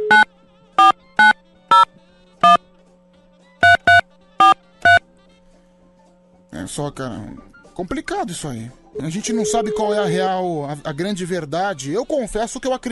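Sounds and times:
telephone keypad beeps: 0.1s - 2.6s, 3.6s - 5.0s, 9.3s - 10.1s
speech: 6.8s - 12.9s
telephone dial tone: 9.3s - 10.1s.

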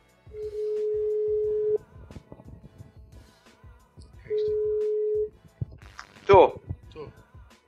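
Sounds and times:
outgoing phone call ringing tone: 0.4s - 1.9s, 4.3s - 5.3s.

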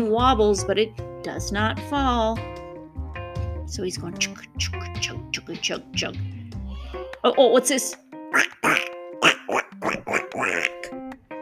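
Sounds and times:
speech: 0.0s - 2.6s, 3.7s - 6.4s, 7.2s - 8.9s
ducks quacking: 8.3s - 11.0s.

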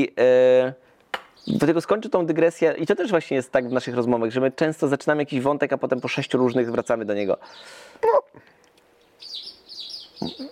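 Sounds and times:
speech: 0.0s - 0.8s, 1.4s - 8.6s, 10.2s - 10.5s
high warbling birdsong: 1.2s - 2.0s, 3.0s - 10.5s
low voiced sound: 10.2s - 10.5s.

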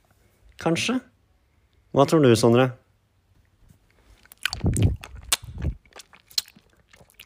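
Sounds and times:
speech: 0.6s - 1.1s, 1.9s - 2.8s
crunchy chewing on a hard candy: 3.9s - 7.2s
wet mouth clicks: 4.1s - 7.2s.

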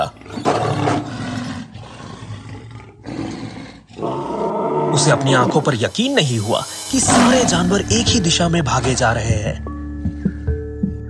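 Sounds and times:
lion roaring: 0.0s - 5.8s
speech: 5.0s - 9.7s.

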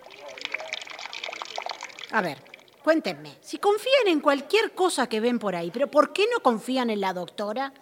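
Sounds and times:
water pouring into a small vessel for mate: 0.0s - 2.9s
speech: 2.1s - 7.8s.

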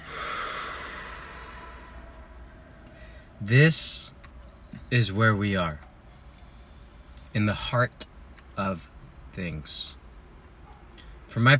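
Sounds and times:
deep breath being let out: 0.0s - 3.4s
speech: 3.4s - 4.1s, 4.9s - 5.9s, 7.4s - 10.0s, 11.4s - 11.5s.

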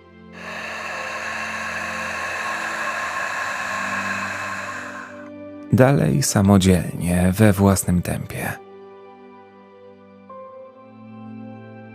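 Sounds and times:
ujjayi breathing exhale through a narrowed throat: 0.3s - 5.3s
speech: 5.7s - 8.6s.

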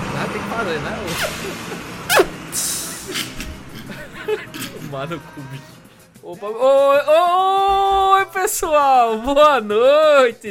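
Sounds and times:
bus engine rumbling: 0.0s - 6.1s
speech: 0.6s - 1.9s, 4.3s - 10.4s
laughter: 1.1s - 2.0s, 3.0s - 5.7s
bus air brakes hissing: 1.1s - 3.7s.

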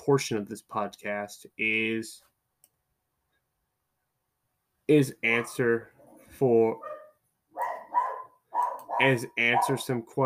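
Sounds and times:
speech: 0.0s - 2.3s, 4.9s - 6.9s, 9.0s - 10.2s
dog barking: 6.8s - 9.8s.

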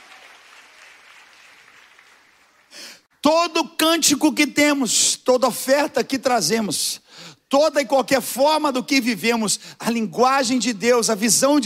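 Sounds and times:
audience clapping and cheering: 0.0s - 3.0s
speech: 3.3s - 11.6s.

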